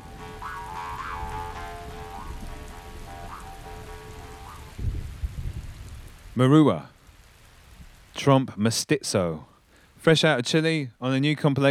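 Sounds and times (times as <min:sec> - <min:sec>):
sustained humming musical tones with gentle swoops: 0:00.0 - 0:05.8
deep rumble of thunder: 0:00.0 - 0:06.4
steady hiss of rain: 0:00.0 - 0:11.6
speech: 0:06.4 - 0:07.0, 0:08.2 - 0:11.6.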